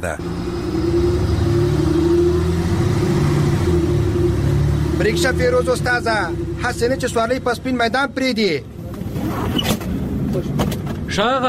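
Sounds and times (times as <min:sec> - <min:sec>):
speech: 0:00.0 - 0:01.1, 0:05.0 - 0:11.4
arriving car engine rumbling: 0:00.0 - 0:11.4.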